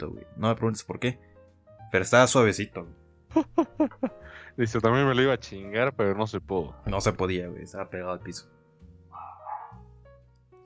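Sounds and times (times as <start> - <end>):
speech: 0.0 - 1.3, 1.9 - 8.6
laughter: 3.4 - 4.2
dog barking: 9.1 - 9.9.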